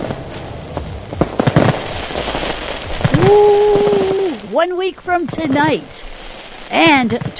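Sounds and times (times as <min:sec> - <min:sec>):
loud fireworks crackling and popping over dense hiss: 0:00.0 - 0:07.3
rising firework whistle: 0:03.0 - 0:04.5
speech: 0:04.6 - 0:06.1, 0:06.7 - 0:07.3.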